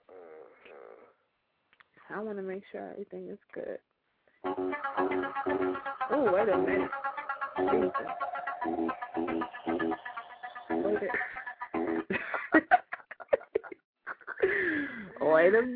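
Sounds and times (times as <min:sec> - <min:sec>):
speech: 0:02.1 - 0:03.9, 0:04.5 - 0:10.0, 0:15.4 - 0:15.7
mobile phone ringtone with rhythmic electronic melody: 0:04.5 - 0:11.3
people laughing: 0:04.9 - 0:15.0.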